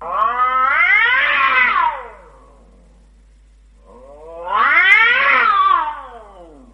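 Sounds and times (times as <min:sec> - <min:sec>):
cat yowling after its tail is stepped on: 0:00.0 - 0:02.3, 0:03.9 - 0:06.7.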